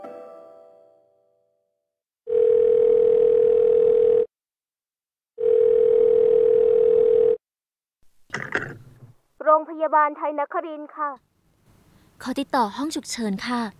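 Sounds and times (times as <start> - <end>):
telephone ringback tone: 2.3 - 4.3, 5.4 - 7.4
speech: 9.8 - 11.3, 12.2 - 13.7.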